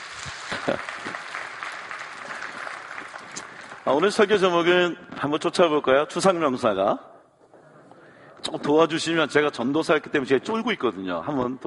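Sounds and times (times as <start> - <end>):
warm audience applause: 0.0 - 4.6
speech: 0.2 - 1.1, 3.9 - 7.1, 8.5 - 11.6.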